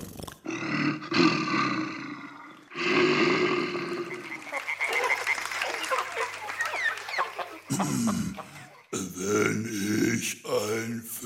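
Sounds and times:
bear roaring with rough growling bursts: 0.4 - 4.4
laughter: 3.5 - 11.0.

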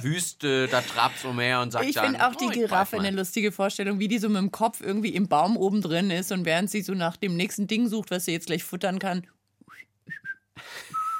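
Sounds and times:
speech: 0.0 - 11.0
person whistling idly: 9.6 - 11.1.

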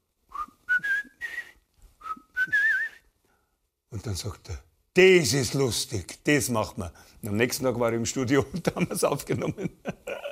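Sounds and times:
person whistling a tune: 0.3 - 3.1
speech: 4.0 - 9.8
laughter: 8.3 - 10.2.

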